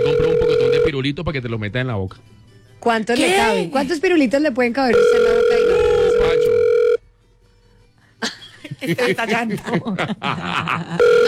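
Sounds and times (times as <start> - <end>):
unanswered telephone call ringback tone: 0.0 - 1.0, 4.9 - 7.0, 11.0 - 11.2
speech: 0.9 - 6.6, 8.2 - 11.2
laughter: 8.2 - 11.2.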